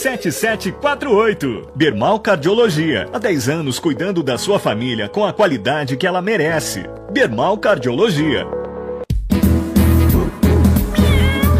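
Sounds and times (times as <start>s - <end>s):
speech: 0.0s - 8.6s
loud steady musical backing: 0.0s - 11.5s
voices imitating a cat's meowing: 10.8s - 11.5s.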